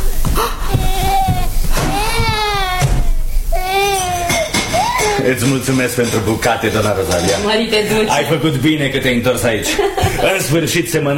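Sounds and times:
speech: 0:00.4 - 0:00.9, 0:05.3 - 0:11.1
baby crying in drawn-out wails: 0:00.4 - 0:05.4
laughter: 0:09.5 - 0:10.6.

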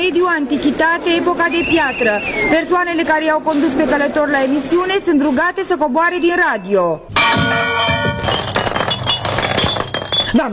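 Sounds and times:
speech: 0:00.1 - 0:07.9
clinking and tinkling fragments of a breaking lamp: 0:07.2 - 0:10.5
lamp breaking with a sharp glassy crash: 0:07.2 - 0:10.5.

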